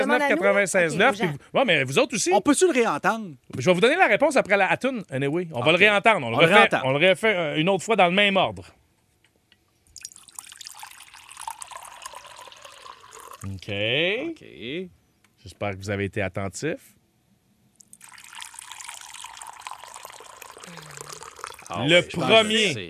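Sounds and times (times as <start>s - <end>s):
speech: 0.0s - 8.8s, 13.4s - 17.0s, 21.7s - 22.8s
cold water pouring into a container: 10.0s - 13.6s, 17.8s - 21.8s.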